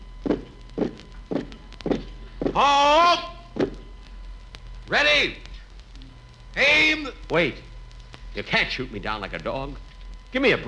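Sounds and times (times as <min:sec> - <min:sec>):
heavy footsteps of prisoners being marched out to a courtyard: 0:00.0 - 0:03.9
speech: 0:02.6 - 0:03.3, 0:04.9 - 0:05.5, 0:06.6 - 0:07.7, 0:08.4 - 0:10.6.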